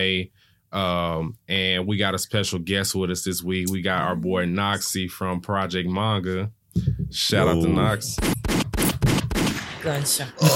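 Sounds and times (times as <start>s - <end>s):
speech: 0.0s - 8.5s, 9.8s - 10.5s
gunshot sound effect triggered by a button on an audio mixer: 8.2s - 10.0s.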